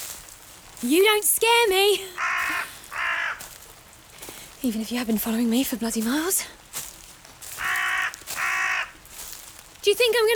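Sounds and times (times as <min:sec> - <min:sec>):
speech: 0:00.8 - 0:02.5, 0:04.6 - 0:06.7, 0:09.8 - 0:10.3
crow cawing in a forest: 0:02.1 - 0:04.5, 0:07.4 - 0:09.4.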